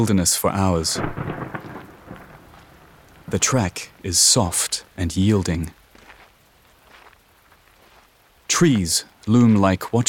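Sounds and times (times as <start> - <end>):
speech: 0.0 - 1.7, 3.3 - 5.8, 8.6 - 10.0
steady rain pattering on a surface: 0.0 - 10.0.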